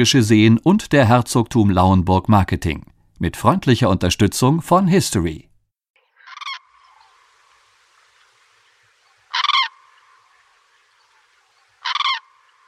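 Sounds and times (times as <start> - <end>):
speech: 0.0 - 5.5
common crane giving rasping trumpet calls: 6.2 - 7.1, 9.2 - 12.6.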